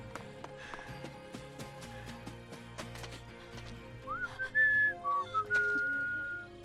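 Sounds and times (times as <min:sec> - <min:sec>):
person whistling: 0:04.1 - 0:06.5.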